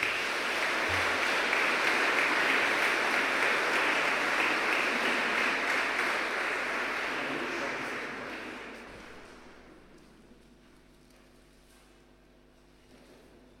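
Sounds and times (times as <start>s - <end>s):
audience applause for the mayor: 0.0s - 9.6s.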